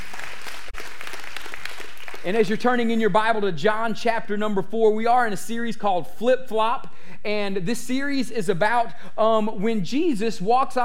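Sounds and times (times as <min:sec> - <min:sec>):
audience applauding with many hands clapping: 0:00.0 - 0:02.6
speech: 0:02.2 - 0:10.8.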